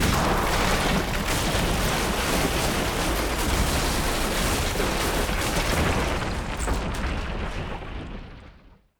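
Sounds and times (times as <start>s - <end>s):
destruction: 0.0s - 7.5s.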